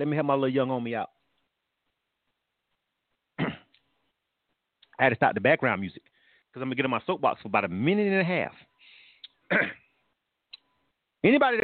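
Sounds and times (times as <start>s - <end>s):
speech: 0.0s - 1.2s, 5.0s - 8.7s, 9.5s - 9.8s, 11.2s - 11.6s
throat clearing: 3.4s - 3.8s, 9.5s - 9.9s.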